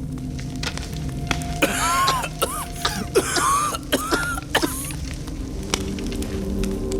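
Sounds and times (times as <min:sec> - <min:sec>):
noise: 0:00.0 - 0:06.9
person coughing from smoke of a burning straw pile: 0:01.6 - 0:05.0.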